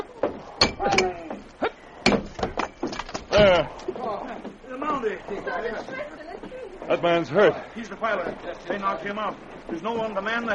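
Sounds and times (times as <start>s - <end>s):
axe striking a locked door to break its lock: 0.6s - 1.4s, 2.0s - 3.6s
speech: 3.4s - 3.9s, 5.0s - 6.2s, 6.9s - 10.5s.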